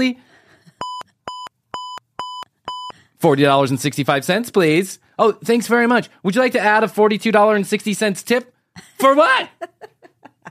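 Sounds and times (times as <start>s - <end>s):
speech: 0.0s - 0.2s, 3.2s - 9.7s
checkout register scanner beeping in a children's clothing store: 0.8s - 2.9s
laughter: 8.8s - 10.4s.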